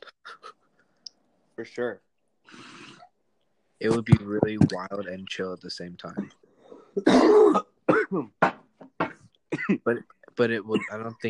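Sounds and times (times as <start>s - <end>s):
speech: 1.6s - 2.1s, 3.8s - 8.6s, 9.7s - 11.2s
person coughing after water went down the wrong pipe: 7.0s - 9.8s, 10.7s - 11.2s
throat clearing: 7.0s - 9.9s, 10.7s - 11.1s.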